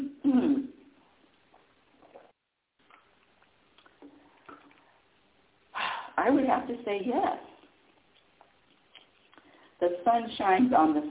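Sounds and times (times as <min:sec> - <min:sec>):
soft mouth and swallowing noises with small clicks: 0:00.0 - 0:05.0, 0:07.6 - 0:09.5
person sipping water: 0:00.2 - 0:05.1, 0:07.6 - 0:09.7
speech: 0:06.2 - 0:07.5, 0:09.8 - 0:11.0.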